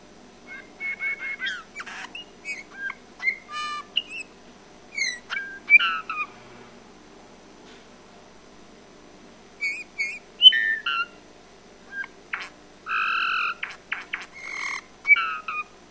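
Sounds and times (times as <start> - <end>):
Eurasian bullfinch Pyrrhula pyrrhula whistled calls: 0.5 - 4.3, 5.0 - 6.3, 9.6 - 11.2, 11.9 - 15.7.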